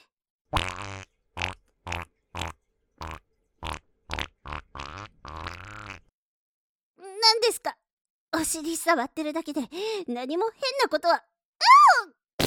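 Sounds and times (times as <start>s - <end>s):
loud buzzy farts: 0.6s - 6.1s
speech: 7.5s - 12.2s.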